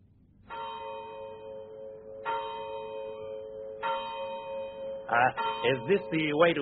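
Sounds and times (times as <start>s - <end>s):
village church clock bell striking: 0.5s - 6.6s
speech: 5.1s - 6.6s.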